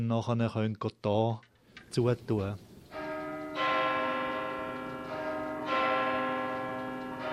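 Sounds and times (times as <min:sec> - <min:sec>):
speech: 0:00.0 - 0:02.7
church bell striking the hour at night: 0:02.9 - 0:07.3.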